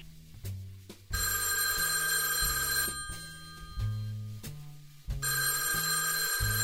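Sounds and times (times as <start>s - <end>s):
telephone ringing in bright buzzing bursts: 1.2s - 4.1s, 5.2s - 6.6s.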